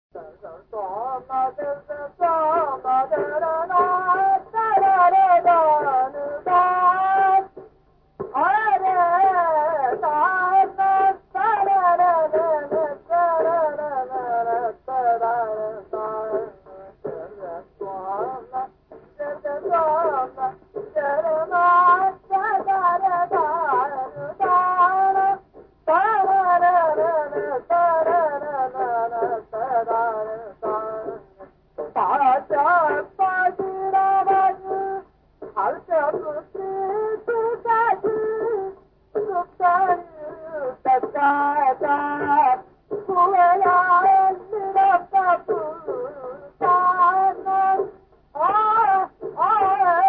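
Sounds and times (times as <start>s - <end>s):
Indian vocal in raga Jaunpuri: 0.2s - 7.6s, 8.2s - 50.0s.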